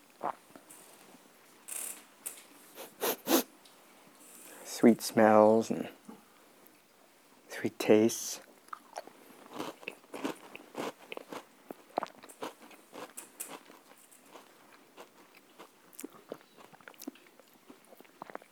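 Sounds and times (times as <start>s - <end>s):
speech: 0.2s - 0.4s, 4.8s - 6.0s, 7.6s - 8.4s
biting and crunching into a cookie: 8.7s - 18.5s.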